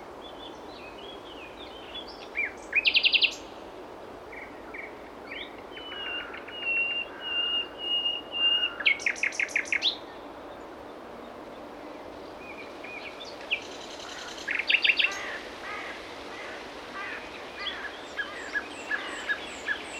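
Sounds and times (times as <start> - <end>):
common nightingale Luscinia megarhynchos singing: 0.2 - 3.5, 4.3 - 10.7, 11.9 - 15.3, 17.6 - 19.9.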